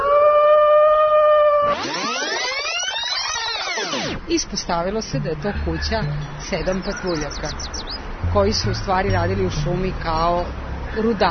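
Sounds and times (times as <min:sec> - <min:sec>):
wolf howling in a forest: 0:00.0 - 0:04.0
speech: 0:04.3 - 0:11.2.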